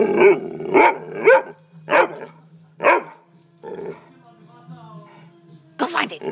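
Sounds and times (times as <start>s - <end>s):
dog barking while urged to search: 0.2s - 3.2s.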